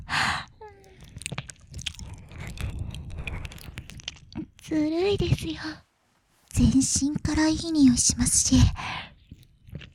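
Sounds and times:
wet mouth sounds of nibbling and eating on an ear: 0.8 - 4.6, 9.2 - 9.9
speech: 4.7 - 5.9, 6.6 - 9.0.

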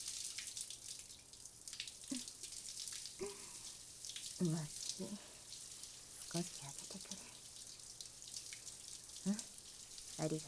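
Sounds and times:
warm water running to rinse: 0.0 - 10.4
speech: 4.4 - 5.3, 6.3 - 7.4, 9.2 - 9.5, 10.2 - 10.4.

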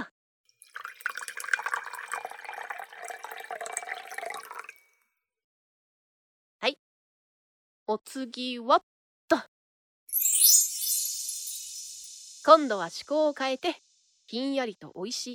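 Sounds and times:
wine being poured into a glass: 0.6 - 5.0, 10.1 - 13.2
speech: 7.9 - 9.5, 12.5 - 15.3.

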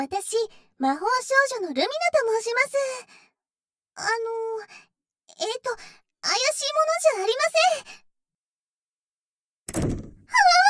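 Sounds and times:
speech: 0.0 - 3.3, 4.0 - 8.0
door thudding shut: 9.7 - 10.3.

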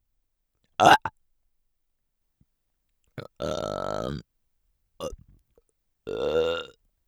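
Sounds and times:
person burping: 0.8 - 1.1, 3.2 - 4.2, 6.1 - 6.7
speech: 0.8 - 1.1.

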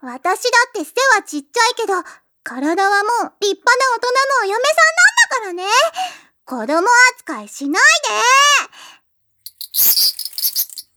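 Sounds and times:
speech: 0.0 - 9.0, 9.8 - 10.6
cicada buzzing as it takes flight: 9.5 - 10.8.

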